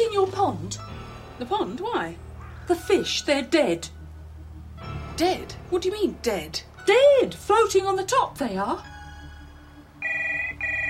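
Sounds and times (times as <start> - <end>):
speech: 0.4 - 4.0, 5.2 - 8.9
telephone ringing with bright electronic trills: 10.0 - 10.8.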